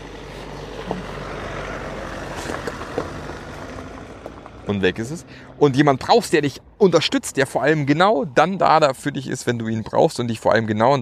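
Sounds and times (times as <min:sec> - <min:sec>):
car driving past outdoors with engine and tire noise: 0:00.0 - 0:06.0
speech: 0:04.7 - 0:11.0.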